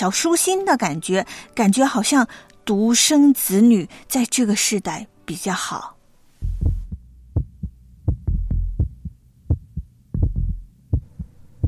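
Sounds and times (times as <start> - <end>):
speech: 0.0 - 6.0
heartbeat thumping: 6.4 - 11.6
low hum: 6.4 - 11.6.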